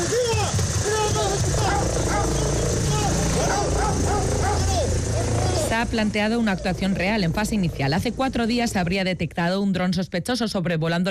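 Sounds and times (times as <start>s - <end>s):
police dogs barking and yipping: 0.7s - 5.8s
speech: 5.8s - 11.0s.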